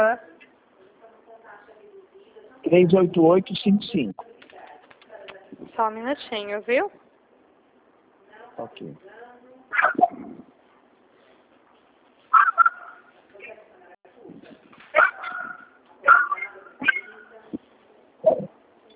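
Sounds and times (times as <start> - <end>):
speech: 0.0 - 0.3, 2.7 - 4.3, 5.5 - 7.0, 8.6 - 10.1
dog barking: 9.7 - 10.4, 12.3 - 13.1, 15.0 - 17.3.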